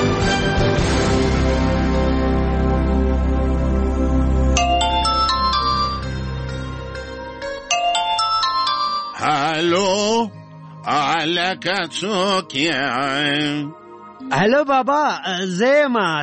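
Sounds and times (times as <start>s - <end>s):
sustained music bed: 0.0s - 16.2s
telephone ringtone of bright high electronic notes: 4.6s - 10.2s
speech: 11.2s - 16.2s.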